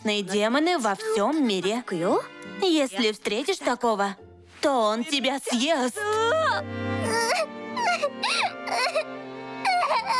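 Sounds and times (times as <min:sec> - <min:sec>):
speech: 0:00.0 - 0:07.2
child crying in high-pitched wails and sobs: 0:06.0 - 0:10.1.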